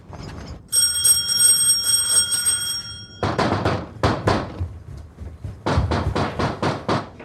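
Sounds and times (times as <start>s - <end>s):
bright sustained electric doorbell chime: 0.7s - 3.4s
heavy rapid knocking on a door: 3.2s - 7.2s.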